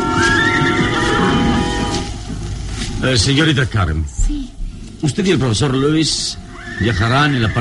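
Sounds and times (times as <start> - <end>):
horse hitched to a cart neighing: 0.2 - 2.1, 6.4 - 7.5
speech: 3.0 - 7.5.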